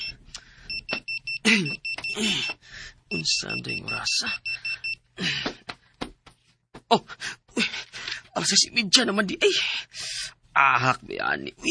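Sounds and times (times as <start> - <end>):
alarm clock beeping with short electronic tones: 0.0 - 5.1
speech: 1.5 - 4.5, 5.2 - 5.5, 8.4 - 11.6.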